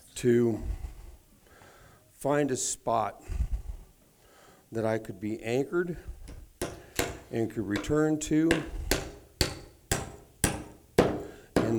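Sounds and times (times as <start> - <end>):
speech: 0.2 - 0.8, 2.2 - 3.4, 4.7 - 6.1, 7.3 - 8.8
hammer striking a nail into wood: 6.3 - 11.7.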